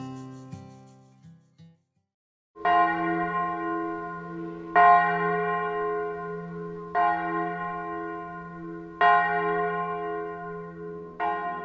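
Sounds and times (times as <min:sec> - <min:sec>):
church bells pealing: 0:02.6 - 0:11.6.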